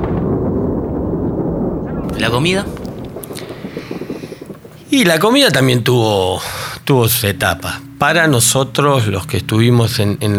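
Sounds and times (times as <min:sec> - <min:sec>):
anti-aircraft batteries firing during an attack on a bay: 0:00.0 - 0:06.0
speech: 0:02.2 - 0:02.8, 0:04.9 - 0:10.3.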